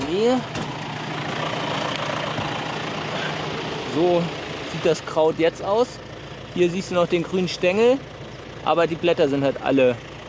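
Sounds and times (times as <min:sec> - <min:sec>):
tractor engine idling: 0:00.0 - 0:10.2
speech: 0:00.1 - 0:00.6, 0:04.0 - 0:10.1.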